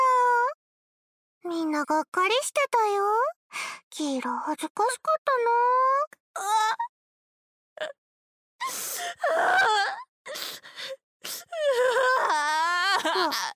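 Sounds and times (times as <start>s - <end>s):
speech: 1.7s - 6.9s, 7.8s - 8.0s, 8.6s - 13.5s
person crying and wailing: 9.0s - 10.0s, 11.6s - 13.5s.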